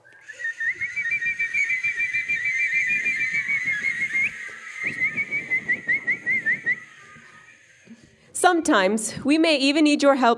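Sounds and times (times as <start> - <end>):
whistles imitating a flock of birds: 0.0 - 8.2
rustling crowd: 0.0 - 9.2
speech: 8.5 - 10.3.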